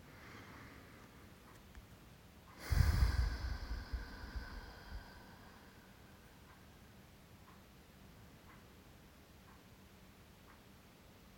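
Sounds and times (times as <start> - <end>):
slow full deep breaths during a guided breathing exercise: 0.0 - 1.3, 2.6 - 6.6.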